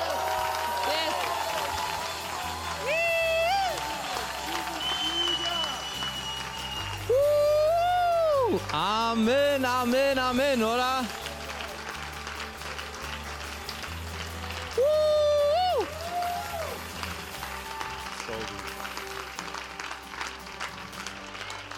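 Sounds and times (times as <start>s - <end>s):
whoops and cheering voices: 0.0s - 8.7s, 14.5s - 18.8s
church audience applause: 0.0s - 21.7s
speech: 8.6s - 11.2s.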